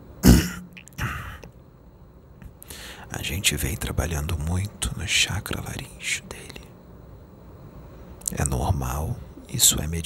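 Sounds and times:
man clearing his throat during a mediumship channeling session: 0:00.2 - 0:01.4
speech: 0:03.1 - 0:06.5, 0:08.3 - 0:10.0.

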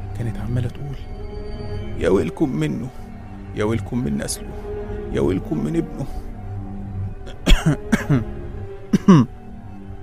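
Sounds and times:
speech: 0:00.2 - 0:03.0, 0:03.6 - 0:06.3, 0:07.6 - 0:08.4, 0:09.1 - 0:09.4
short harsh coughs: 0:07.4 - 0:08.3, 0:08.9 - 0:09.3.

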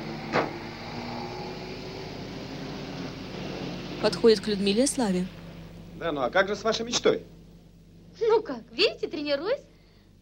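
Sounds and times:
mobile-cinema van engine hum: 0:00.0 - 0:09.5
speech: 0:04.0 - 0:05.4, 0:06.0 - 0:07.3, 0:08.2 - 0:09.7.

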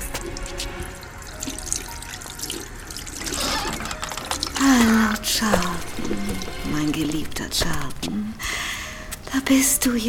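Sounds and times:
water running from a tap into a washbasin in a toilet room: 0:00.0 - 0:07.5
water dripping: 0:00.0 - 0:10.0
speech: 0:04.7 - 0:08.7, 0:09.4 - 0:10.0.

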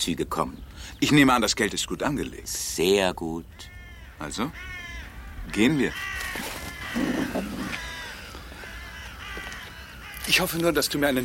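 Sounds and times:
speech: 0:00.0 - 0:04.8, 0:05.5 - 0:07.8, 0:10.3 - 0:11.2
ravens cawing: 0:03.5 - 0:11.2.

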